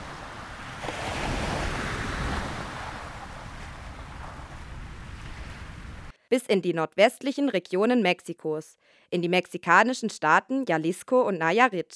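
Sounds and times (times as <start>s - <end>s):
steady ocean surf washing and roaring while crossing the Atlantic: 0.0s - 6.1s
wind noise buffeting the microphone: 0.0s - 6.1s
speech: 6.3s - 11.9s.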